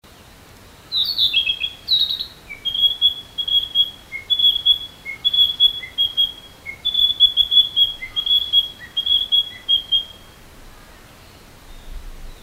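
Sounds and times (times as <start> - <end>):
Narcissus flycatcher singing matsuribayashi style song: 0.9 - 10.4.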